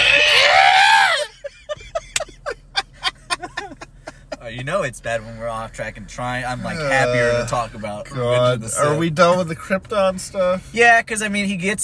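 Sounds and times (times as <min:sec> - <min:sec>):
person imitating the scream of a movie character doing a flip: 0:00.0 - 0:01.3
breathy laughter: 0:00.9 - 0:04.4
speech: 0:04.7 - 0:11.8.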